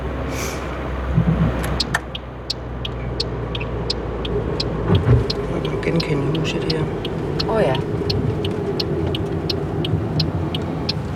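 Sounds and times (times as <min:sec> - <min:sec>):
car engine rumbling as the car drives out: 0:00.0 - 0:11.1
speech: 0:06.1 - 0:08.0.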